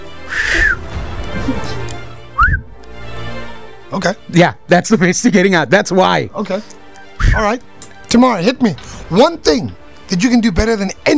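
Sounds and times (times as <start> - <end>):
person whistling: 0.3 - 0.8, 2.4 - 2.7
speech: 4.0 - 11.1.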